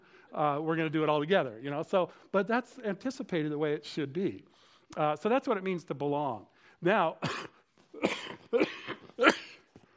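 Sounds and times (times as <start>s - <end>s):
speech: 0.3s - 8.7s
person with allergies coughing: 7.2s - 9.8s.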